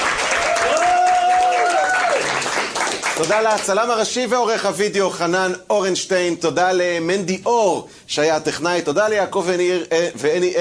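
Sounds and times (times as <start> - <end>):
audience applause: 0.0 - 3.7
speech: 3.2 - 10.5.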